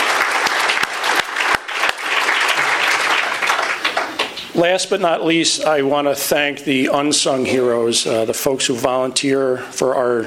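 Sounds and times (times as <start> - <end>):
crowd applauding city employees: 0.0 - 4.5
speech: 4.6 - 10.2.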